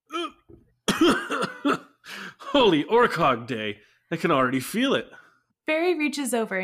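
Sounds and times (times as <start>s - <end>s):
harsh raspy coughing after inhaling pipe smoke: 0.1s - 2.8s
speech: 2.6s - 6.6s.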